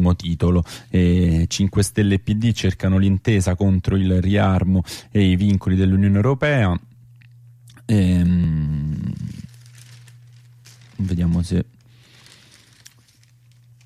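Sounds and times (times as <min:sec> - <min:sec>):
steady low hum: 0:00.0 - 0:13.8
speech: 0:00.1 - 0:06.9, 0:07.9 - 0:09.5, 0:11.0 - 0:11.7
newspaper pages being opened and rustled: 0:08.9 - 0:13.8.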